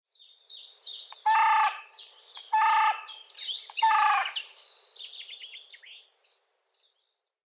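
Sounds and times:
small birds twittering and chirping: 0:00.1 - 0:07.4
carrion crow Corvus corone cawing: 0:01.2 - 0:01.9, 0:02.5 - 0:03.2, 0:03.8 - 0:04.4.

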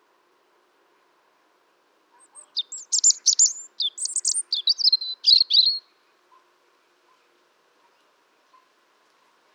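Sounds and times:
European robin song: 0:02.2 - 0:05.9.

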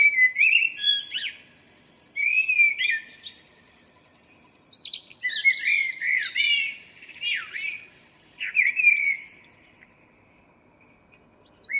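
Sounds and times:
common blackbird Turdus merula singing: 0:00.0 - 0:01.4, 0:02.2 - 0:03.5, 0:04.3 - 0:09.8, 0:11.2 - 0:11.7.

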